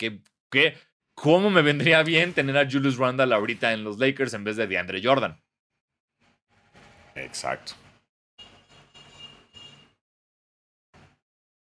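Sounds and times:
speech: 0:00.0 - 0:05.4, 0:07.2 - 0:07.8
car horn honking outside: 0:08.4 - 0:10.0.

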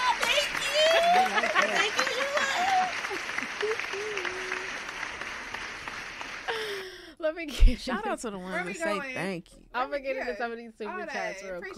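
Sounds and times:
applause sound effect of many hands clapping: 0:00.0 - 0:07.0
laughter: 0:00.2 - 0:04.8
speech: 0:07.4 - 0:11.7.

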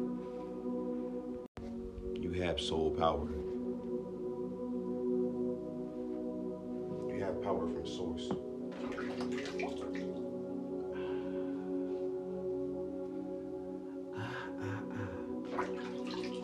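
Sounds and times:
steady humming musical drone: 0:00.0 - 0:16.4
speech: 0:02.3 - 0:03.5, 0:07.5 - 0:10.1
water dripping, splashing and trickling in a basin: 0:08.7 - 0:10.2, 0:15.5 - 0:16.4.

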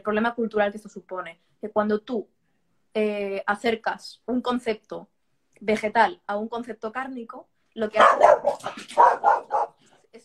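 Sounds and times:
speech: 0:00.0 - 0:10.2
dog barking angrily: 0:08.0 - 0:10.2.

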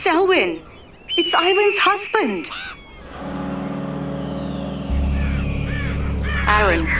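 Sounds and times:
speech: 0:00.0 - 0:03.4, 0:06.5 - 0:06.9
birds calling and cawing: 0:00.0 - 0:06.9
heavy steady low rumble: 0:03.0 - 0:06.9.

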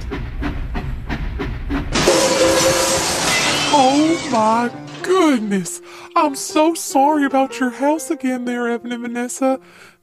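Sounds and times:
train rumbling by with clickety-clack rhythm: 0:00.0 - 0:02.8
loud sustained hiss of steam: 0:01.9 - 0:04.3
speech: 0:03.8 - 0:10.0.

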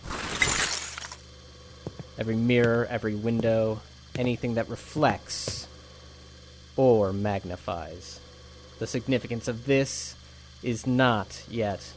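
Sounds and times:
glass shattering: 0:00.0 - 0:01.2
scattered glass fragments tinkling: 0:00.0 - 0:01.2
speech: 0:02.2 - 0:05.7, 0:06.8 - 0:11.9.

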